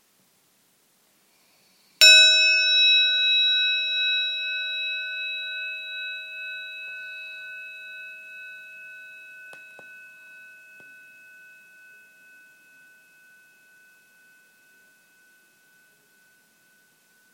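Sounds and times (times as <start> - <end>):
gong struck to open meditation: 2.0 - 7.9.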